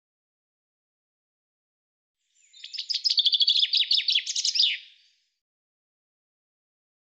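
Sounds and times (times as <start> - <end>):
common chaffinch song: 2.3 - 5.3.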